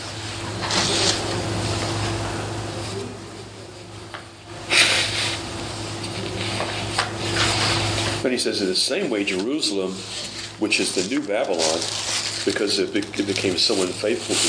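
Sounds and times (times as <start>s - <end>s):
low hum: 0.0s - 14.4s
nose blowing: 4.7s - 5.4s
speech: 8.2s - 14.4s.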